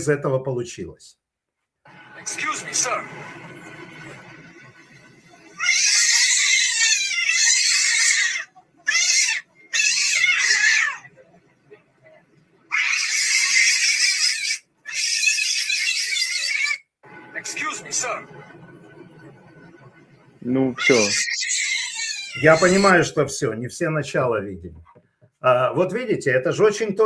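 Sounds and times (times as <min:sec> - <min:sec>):
speech: 0:00.0 - 0:01.2, 0:01.9 - 0:03.8, 0:20.4 - 0:21.3, 0:22.4 - 0:27.0
laughter: 0:02.2 - 0:05.6, 0:17.2 - 0:21.1
cat screaming frantically in a video on an airplane: 0:05.6 - 0:11.1, 0:12.7 - 0:16.9, 0:20.8 - 0:22.9.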